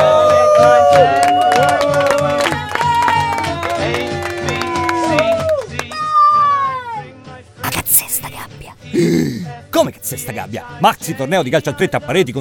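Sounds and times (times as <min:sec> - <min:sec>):
football fans cheering: 0:00.0 - 0:07.0
speech: 0:10.3 - 0:12.3.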